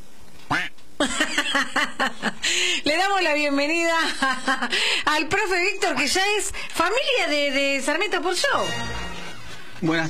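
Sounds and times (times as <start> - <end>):
duck quack sound effect: 0.5 - 0.7
speech: 1.1 - 9.0, 9.8 - 10.0.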